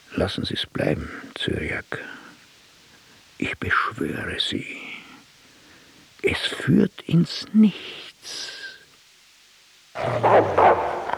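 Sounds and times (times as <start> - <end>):
speech: 0.2 - 2.2, 3.4 - 4.9, 6.2 - 8.6, 10.0 - 10.9
dogs barking and growling in a hall: 10.0 - 11.1.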